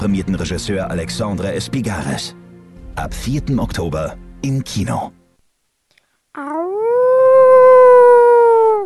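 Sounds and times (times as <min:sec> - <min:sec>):
speech: 0:00.0 - 0:02.4, 0:03.0 - 0:05.2
person howling like a wolf: 0:06.4 - 0:08.8.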